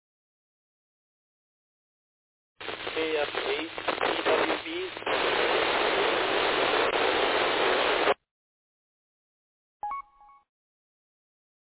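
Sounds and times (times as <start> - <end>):
radio static over weak amateur transmission: 2.6 - 8.2
speech: 3.0 - 5.1.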